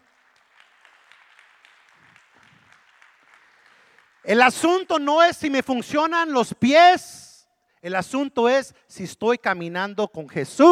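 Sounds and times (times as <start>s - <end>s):
crowd applauding in a big room: 0.0s - 5.0s
speech: 4.2s - 7.2s, 7.8s - 10.6s.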